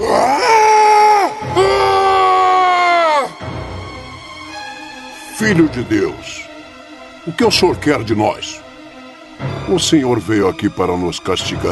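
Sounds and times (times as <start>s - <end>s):
men screaming violently: 0.0s - 3.4s
speech: 5.4s - 6.5s, 7.2s - 8.6s, 9.7s - 11.6s.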